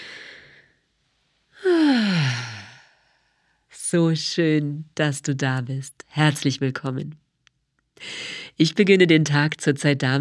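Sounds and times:
deep breath in and out during a calm relaxation exercise: 0.0 - 0.9, 1.5 - 3.7
speech: 3.9 - 7.2, 8.0 - 10.1.

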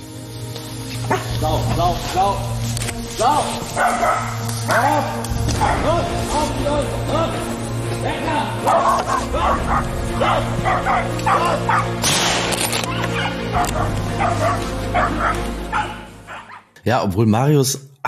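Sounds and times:
pack of hunting dogs barking and yelping during a wild boar hunt: 1.0 - 1.4, 3.6 - 6.0, 8.6 - 12.0, 12.7 - 16.8
speech: 1.1 - 12.4, 13.5 - 15.9, 16.8 - 18.0.

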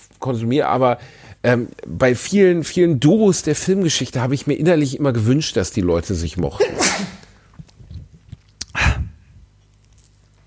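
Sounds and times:
speech: 0.2 - 7.2
person sneezing after removing headset: 6.5 - 7.4, 8.7 - 9.2.

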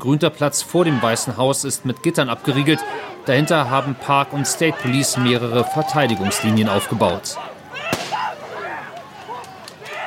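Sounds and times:
speech: 0.0 - 7.9
protest crowd shouting and yelling: 0.0 - 10.0
firecracker bang at a street protest by Lafayette Park: 7.9 - 8.3.

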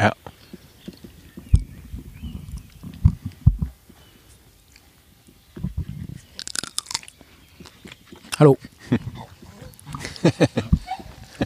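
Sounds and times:
speech: 0.0 - 0.2, 8.4 - 9.0
dog yelping and cackling: 9.2 - 11.4.

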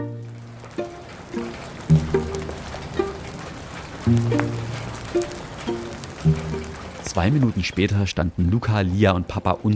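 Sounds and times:
low humming tones: 0.0 - 7.4
scattered rain drips: 0.0 - 9.7
steady rain pattering in a courtyard: 0.0 - 9.7
speech: 4.1 - 4.6, 7.2 - 9.7.

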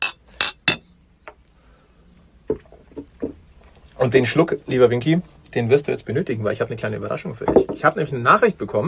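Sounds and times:
glasses clinking in a toast: 0.0 - 1.0
speech: 2.5 - 3.3, 4.0 - 8.8.

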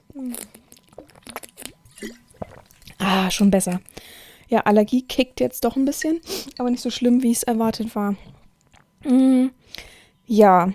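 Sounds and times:
slurping and swallowing a sip of water: 0.0 - 4.1, 7.6 - 9.1
speech: 2.0 - 2.2, 3.1 - 3.9, 4.6 - 8.3, 9.0 - 10.7.

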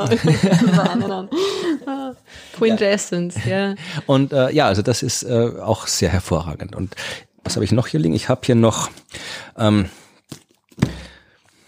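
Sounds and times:
laughter: 0.0 - 2.7
speech: 0.0 - 11.0
books being set down on a surface: 10.8 - 11.1.

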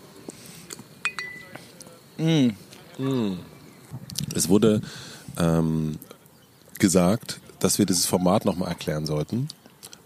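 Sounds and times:
quiet murmur: 0.0 - 10.0
glasses or bottles clinking in a toast: 1.0 - 1.6
speech: 2.2 - 3.5, 4.4 - 6.1, 6.8 - 9.6.

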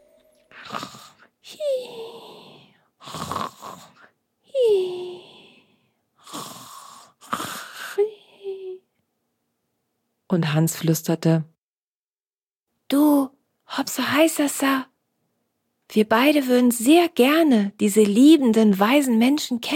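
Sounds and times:
voice imitating the snoring of a sleeping marmot: 0.1 - 8.8
speech: 10.3 - 11.5, 13.9 - 14.9, 15.9 - 19.7.

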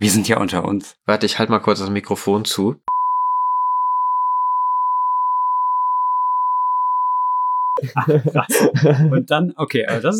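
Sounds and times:
speech: 0.0 - 2.9, 7.8 - 10.1
high-pitched censorship bleep tone: 2.9 - 7.8
laughter: 7.8 - 10.1.

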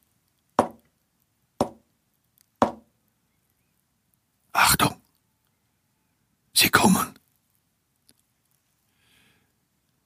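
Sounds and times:
soft knocks on a wall: 0.6 - 0.8, 1.6 - 1.8, 2.6 - 2.9.

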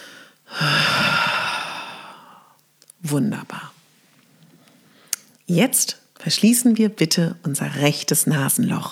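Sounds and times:
deep hearty breath out during a guided breathing exercise: 0.0 - 2.6
speech: 3.1 - 3.6, 5.5 - 8.9.

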